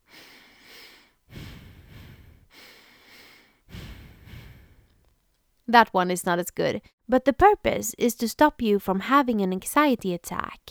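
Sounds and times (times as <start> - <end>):
double inhale double exhale breathing exercise: 0.0 - 5.2
speech: 5.7 - 10.6.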